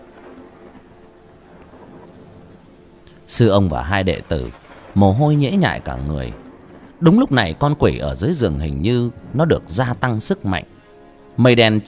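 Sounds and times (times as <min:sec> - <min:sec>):
wind during a storm: 0:00.0 - 0:03.4, 0:06.3 - 0:07.0
rain during a storm: 0:00.0 - 0:11.8
speech: 0:03.3 - 0:06.4, 0:07.0 - 0:10.7, 0:11.4 - 0:11.8.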